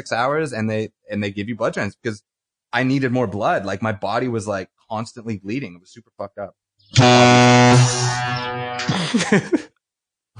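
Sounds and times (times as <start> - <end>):
speech: 0.0 - 9.7
air horn blast from a soundboard: 7.0 - 8.9
laughter: 8.8 - 9.7.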